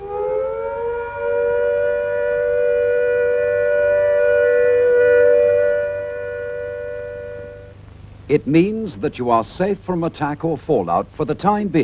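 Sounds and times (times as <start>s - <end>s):
civil defence all-clear siren: 0.0s - 7.8s
speech: 8.3s - 11.8s.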